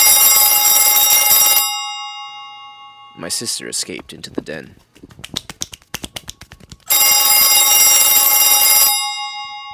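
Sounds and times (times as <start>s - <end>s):
loud shrill telephone ringing in a kitchen: 0.0s - 3.2s, 6.9s - 9.7s
speech: 3.2s - 5.4s.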